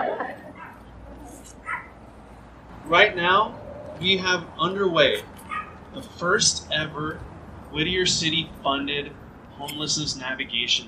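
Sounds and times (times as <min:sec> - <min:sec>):
dog barking: 0:00.5 - 0:00.8, 0:01.6 - 0:02.0, 0:05.4 - 0:05.8
speech: 0:02.9 - 0:05.3, 0:06.0 - 0:10.8.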